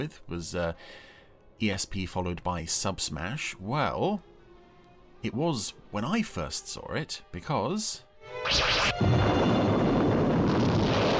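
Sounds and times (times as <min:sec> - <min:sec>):
speech: 0:00.0 - 0:04.3, 0:05.2 - 0:09.9
high zapping whoosh of an alien craft striking a freighter ship: 0:08.4 - 0:09.2
freighter ship blowing up with a loud sustained roaring rumble: 0:09.0 - 0:11.1.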